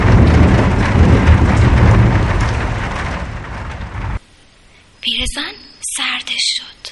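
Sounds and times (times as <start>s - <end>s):
deep rolling rumble of thunder: 0.0s - 4.2s
heavy rain: 0.0s - 4.2s
speech: 5.3s - 6.8s.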